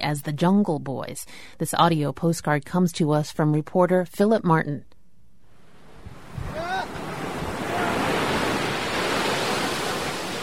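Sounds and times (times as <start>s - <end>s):
speech: 0.0s - 4.9s
sea surf rolling onto a beach between a rock cliff and the sea in the Philippines: 5.7s - 10.4s
faint call: 6.3s - 8.5s.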